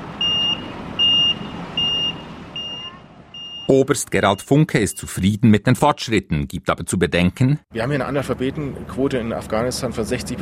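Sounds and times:
reversing beeps from military trucks backing up with loads: 0:00.1 - 0:05.3
speech: 0:03.7 - 0:10.4.

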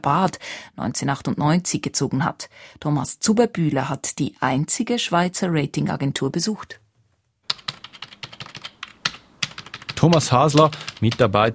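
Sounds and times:
speech: 0:00.0 - 0:06.8, 0:10.0 - 0:11.5
numbers typed into a spreadsheet on a computer keyboard at a credit rating agency: 0:07.5 - 0:11.5.

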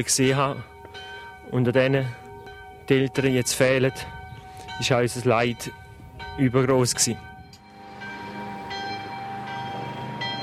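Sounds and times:
speech: 0:00.0 - 0:00.7, 0:01.5 - 0:02.2, 0:02.9 - 0:04.2, 0:04.8 - 0:05.8, 0:06.4 - 0:07.3
old schoolhouse tower bell tolling: 0:00.0 - 0:10.4.

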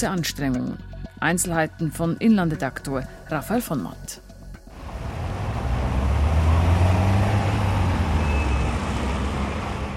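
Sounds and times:
speech: 0:00.0 - 0:04.2
road traffic of passing cars and trucks in Switzerland: 0:04.3 - 0:09.9.

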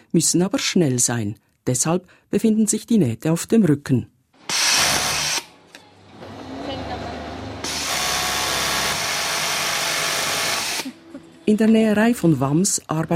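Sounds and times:
speech: 0:00.2 - 0:04.1, 0:11.5 - 0:13.1
sewing machine whirring: 0:07.6 - 0:11.0.

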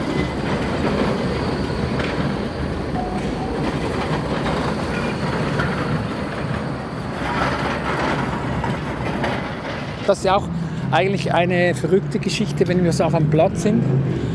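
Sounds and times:
tram arriving at a city square and crossing: 0:00.0 - 0:10.5
continuous city traffic noise: 0:00.0 - 0:14.3
speech: 0:10.1 - 0:14.3.

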